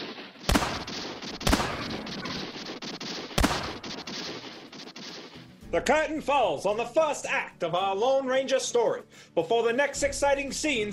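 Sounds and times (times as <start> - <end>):
gunshots in a radio drama shootout: 0.0 - 5.5
speech: 5.7 - 10.9.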